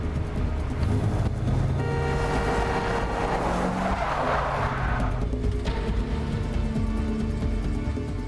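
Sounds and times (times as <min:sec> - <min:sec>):
car engine roaring: 0:00.0 - 0:07.4
car tires squealing in a skid off the road: 0:02.7 - 0:05.2.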